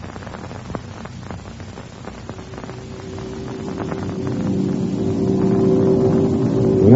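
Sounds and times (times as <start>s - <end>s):
airplane engines droning in flight: 1.9s - 6.9s.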